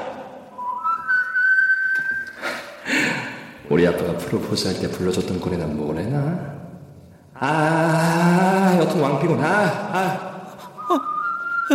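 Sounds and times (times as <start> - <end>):
person whistling a short melodic tune: 0.5 - 2.6, 10.6 - 11.7
speech: 3.7 - 6.6, 7.4 - 10.3.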